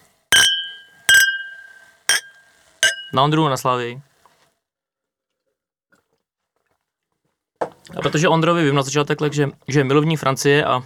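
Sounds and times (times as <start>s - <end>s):
glasses clinking in a toast: 0.3s - 3.3s
speech: 3.1s - 4.1s, 7.9s - 10.8s.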